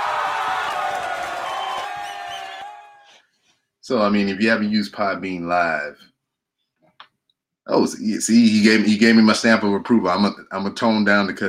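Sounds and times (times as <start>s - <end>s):
crowd cheering and whooping: 0.0s - 3.2s
speech: 3.9s - 6.1s, 7.7s - 11.4s.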